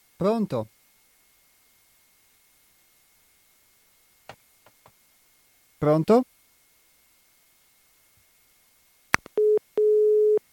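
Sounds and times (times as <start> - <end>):
speech: 0.2 - 0.8, 5.8 - 6.3
mid-pitched telephone line-busy signal after a failed call: 9.4 - 10.4.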